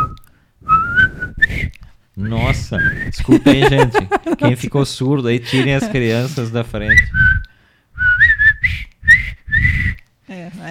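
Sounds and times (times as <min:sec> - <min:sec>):
person whistling a jaunty march-like tune from an old film: 0:00.0 - 0:03.3, 0:06.9 - 0:10.0
speech: 0:02.2 - 0:07.4
laughter: 0:03.2 - 0:04.7, 0:05.4 - 0:06.5.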